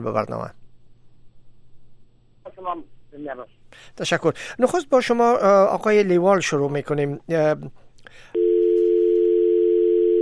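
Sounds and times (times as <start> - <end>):
speech: 0.0 - 0.6, 2.6 - 8.4
telephone dial tone on a radio programme's phone line: 8.4 - 10.1
telephone line noise: 8.4 - 10.1.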